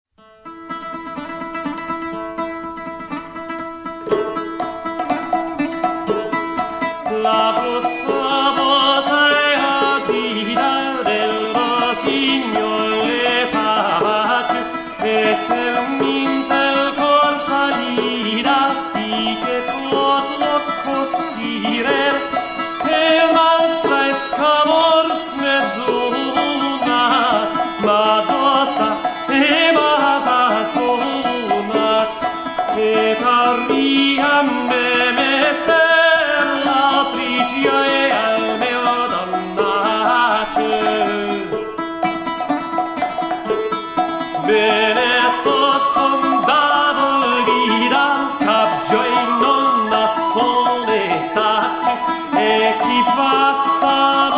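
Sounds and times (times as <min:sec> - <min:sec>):
troubadour song: 0:00.2 - 0:54.3.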